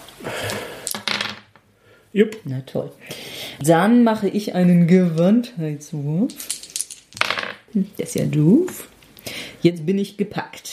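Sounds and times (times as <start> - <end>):
dice rolling across a hard tabletop in a role-playing game: 0.8 - 1.7, 6.2 - 7.7
speech: 2.1 - 6.5, 7.7 - 8.9, 9.6 - 10.7.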